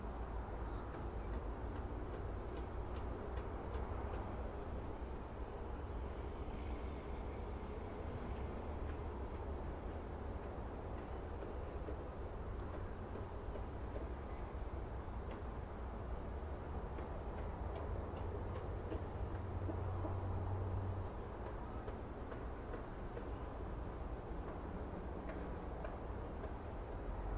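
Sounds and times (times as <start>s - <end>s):
road noise of passing vehicles: 0.0s - 27.3s
faint brief clicks and taps of construction work: 0.9s - 4.6s, 8.3s - 14.4s, 15.2s - 15.6s, 16.6s - 20.2s, 21.2s - 23.6s, 24.4s - 27.1s.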